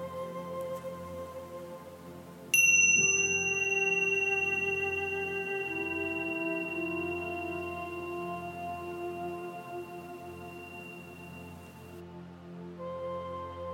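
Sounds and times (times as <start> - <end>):
soft steady low drone: 0.0 - 13.6
meditation bell ringing: 2.5 - 12.0.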